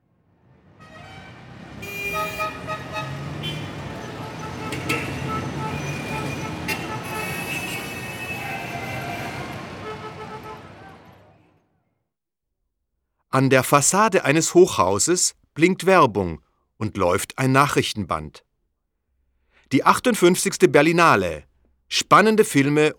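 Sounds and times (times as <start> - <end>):
city traffic roaring on a station forecourt in Berlin in February: 0.0 - 11.8
car horn toots: 0.8 - 11.0
speech: 13.3 - 18.5, 19.7 - 22.9.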